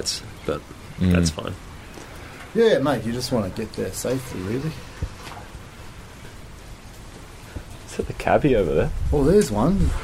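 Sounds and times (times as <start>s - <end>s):
speech: 0.0s - 1.7s, 2.5s - 5.1s, 8.0s - 10.0s
light rain falling outdoors: 0.0s - 10.0s.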